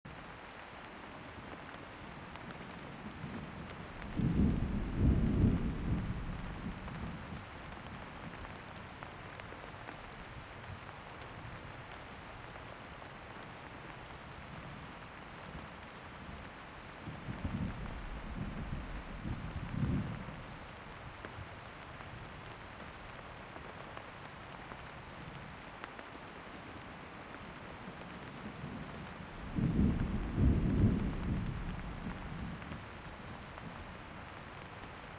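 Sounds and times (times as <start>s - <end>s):
thunderstorm: 2.8s - 8.6s, 16.2s - 21.4s, 28.4s - 33.9s.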